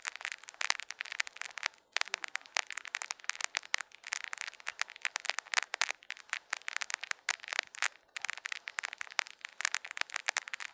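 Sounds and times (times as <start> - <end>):
fizzy drink sparkling: 0.0 - 10.7.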